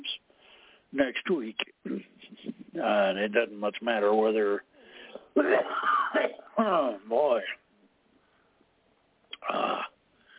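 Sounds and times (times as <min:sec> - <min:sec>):
speech: 0:00.9 - 0:04.7, 0:05.4 - 0:07.6
harsh cough: 0:05.1 - 0:07.0.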